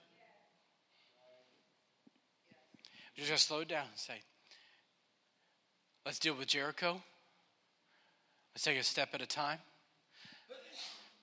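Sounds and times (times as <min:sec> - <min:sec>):
speech: 0:03.1 - 0:04.3, 0:06.0 - 0:07.1, 0:08.6 - 0:10.6
sneeze: 0:10.5 - 0:11.2.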